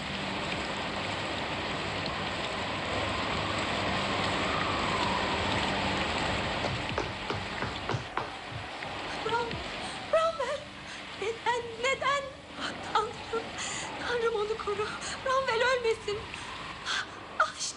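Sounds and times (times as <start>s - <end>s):
sharp drips and knocks: 0.0s - 10.0s
steady rain: 0.0s - 17.7s.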